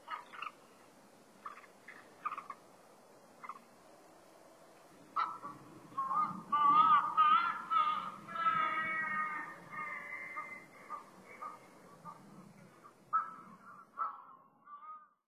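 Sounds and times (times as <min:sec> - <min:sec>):
crested ibis harsh nasal notes and honking calls on Sado, Japan: 0:00.0 - 0:00.8, 0:01.4 - 0:02.7, 0:03.4 - 0:03.7, 0:05.0 - 0:14.4
low background rumble: 0:00.0 - 0:14.8.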